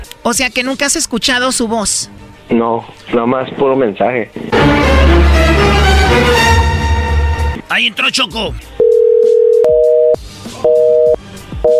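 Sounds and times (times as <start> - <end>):
speech: 0.2 - 6.6, 7.7 - 8.8
steady telephone tone as a call is cut off: 8.8 - 11.7.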